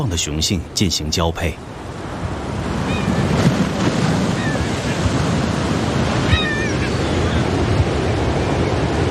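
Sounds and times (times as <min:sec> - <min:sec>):
speech: 0:00.0 - 0:01.8
gusting coastal wind: 0:00.0 - 0:09.0
sea surf roaring: 0:00.0 - 0:09.0.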